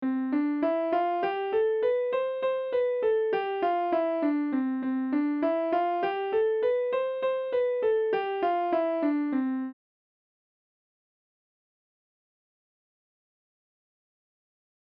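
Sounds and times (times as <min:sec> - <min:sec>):
sparkling major scale: 0:00.0 - 0:09.8.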